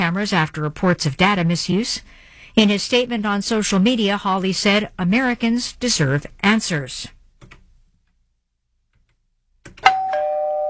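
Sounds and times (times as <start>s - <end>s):
speech: 0.1s - 7.2s
doorbell chiming two bright ding-dong tones: 9.8s - 10.6s.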